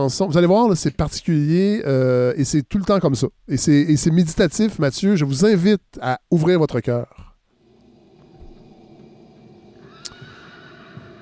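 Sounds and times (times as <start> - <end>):
speech: 0.0 - 7.2
horse neighing: 9.8 - 11.2.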